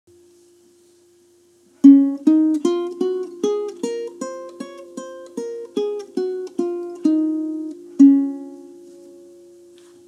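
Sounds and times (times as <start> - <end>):
ukulele playing scales: 1.8 - 9.7.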